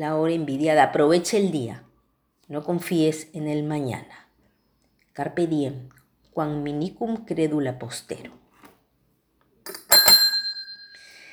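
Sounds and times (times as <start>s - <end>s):
speech: 0.0s - 1.9s, 2.5s - 4.2s, 5.2s - 8.4s
small bell struck: 9.7s - 11.3s.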